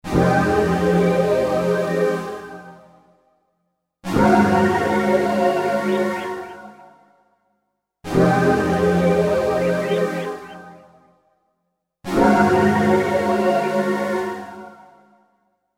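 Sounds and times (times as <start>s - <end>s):
synthesizer pad sound from a 32-voice sound module: 0.1s - 2.6s, 4.1s - 6.8s, 8.1s - 11.0s, 12.2s - 14.7s.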